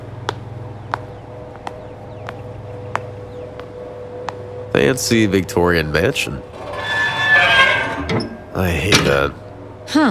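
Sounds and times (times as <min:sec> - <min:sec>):
speech: 0:04.8 - 0:06.6, 0:08.1 - 0:10.0
creak of unoiled hinges: 0:06.4 - 0:09.5.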